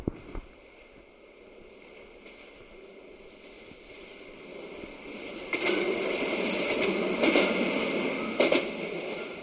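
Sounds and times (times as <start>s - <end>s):
train rumbling over tracks above a tunnel: 0.0s - 9.4s
train cars clanking: 1.9s - 9.4s.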